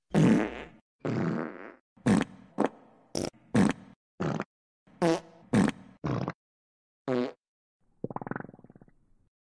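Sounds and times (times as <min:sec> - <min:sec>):
farting: 0:00.1 - 0:06.4, 0:07.1 - 0:07.4, 0:08.0 - 0:08.9.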